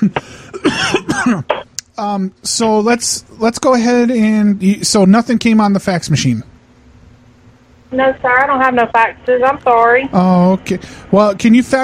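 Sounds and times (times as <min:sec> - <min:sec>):
harsh raspy fit of coughing: 0:00.0 - 0:01.6
speech: 0:00.0 - 0:06.5, 0:07.9 - 0:11.8.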